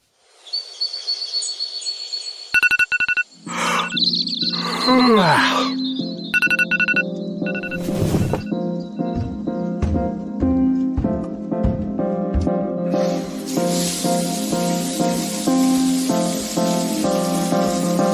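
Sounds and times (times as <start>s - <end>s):
music: 3.4s - 18.1s
shower water spraying: 12.9s - 18.1s.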